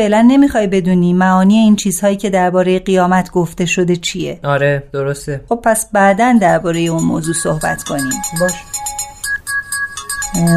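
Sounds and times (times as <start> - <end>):
speech: 0.0 - 9.0, 10.3 - 10.5
phone ringtone playing a bright electronic melody: 6.2 - 10.5.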